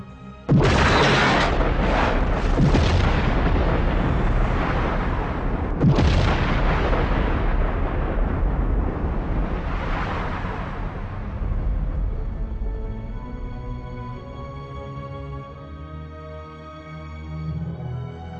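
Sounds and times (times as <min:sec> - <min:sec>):
massive explosion effect representing the Big Bang: 0:00.5 - 0:13.5.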